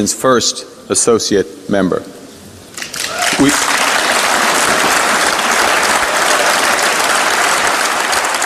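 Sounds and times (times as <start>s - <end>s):
speech: 0.0s - 2.2s, 3.4s - 3.7s
large audience in the European Parliament in Strasbourg applauding a speech: 2.8s - 8.4s.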